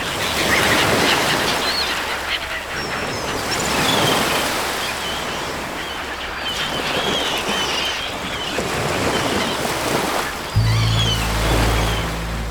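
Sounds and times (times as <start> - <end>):
faint honking bird calls: 0.1 - 12.4
White Sea surf breaking: 10.5 - 12.4.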